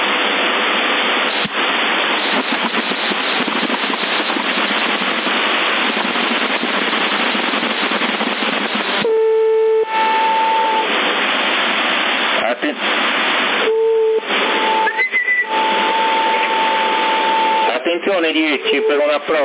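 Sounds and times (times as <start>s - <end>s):
loud hissing static of a CB radio transmission: 0.0s - 19.4s
small horn-like tone effect over a CB radio transmission on 27 MHz: 9.0s - 11.0s, 13.6s - 19.4s.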